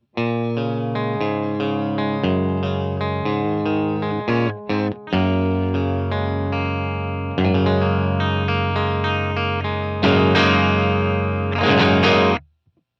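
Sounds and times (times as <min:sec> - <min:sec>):
clean guitar tone from Helix series multi-effects unit: 0:00.0 - 0:12.4.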